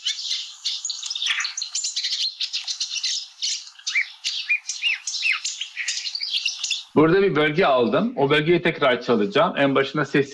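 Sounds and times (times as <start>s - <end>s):
marsh warbler singing: 0.0s - 10.3s
speech: 7.0s - 10.3s.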